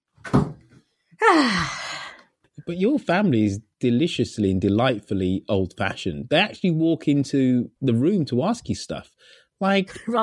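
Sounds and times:
door shutting with a dull thud: 0.2s - 0.7s
speech: 1.3s - 1.8s, 2.7s - 10.2s.

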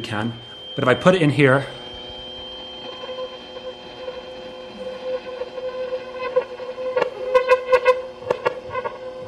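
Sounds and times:
speech: 0.0s - 1.8s
512 Hz tuning fork ringing: 0.0s - 9.2s
buzzing rattles of vibrating fork touching something: 1.8s - 9.2s.

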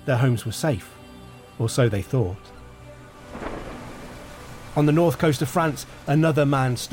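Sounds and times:
speech: 0.0s - 1.0s, 1.6s - 2.6s, 4.8s - 6.9s
wind in a thunderstorm: 0.0s - 6.9s
steady rain in a thunderstorm: 2.4s - 6.9s
low rumble of thunder: 3.1s - 6.9s.

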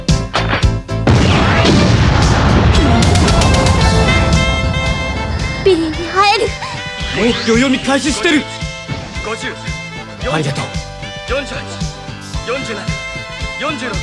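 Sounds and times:
long rumbling roar of crashing debris: 1.0s - 7.3s
loud explosion: 1.0s - 7.7s
sharp impacts: 1.0s - 10.0s
speech: 7.3s - 8.6s, 9.2s - 11.8s, 12.5s - 13.0s, 13.6s - 14.0s.

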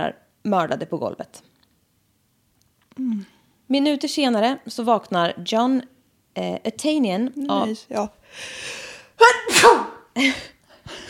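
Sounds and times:
speech: 0.0s - 1.5s, 3.0s - 11.0s
person sneezing: 9.2s - 10.4s.

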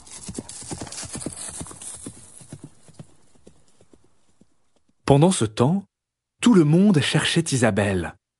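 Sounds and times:
horse hooves trotting on a hard surface: 0.0s - 5.0s
speech: 5.1s - 8.2s.

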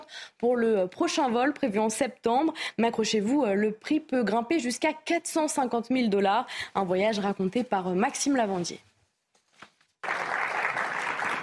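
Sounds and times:
speech: 0.1s - 8.9s
crowd applauding: 10.0s - 11.4s.

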